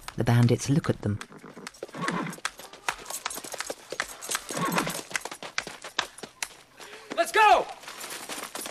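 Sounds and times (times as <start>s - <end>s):
horse hooves clip-clopping as horses are led out: 0.0s - 8.6s
speech: 0.2s - 1.4s
horse whinnying: 1.3s - 2.4s, 4.5s - 5.0s.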